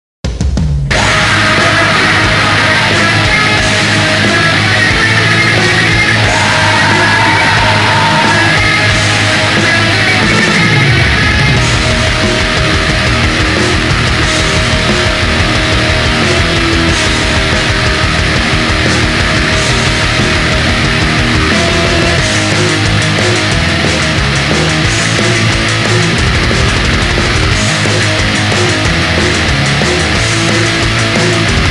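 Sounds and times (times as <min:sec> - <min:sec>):
black metal music: 0:00.3 - 0:31.6.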